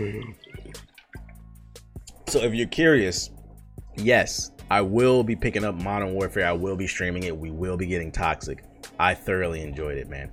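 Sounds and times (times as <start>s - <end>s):
speech: 0.0s - 0.4s, 2.3s - 3.4s, 4.0s - 10.3s
drinker murmuring between sips: 0.0s - 0.8s
person drinking water in gulping swallows: 0.0s - 2.5s.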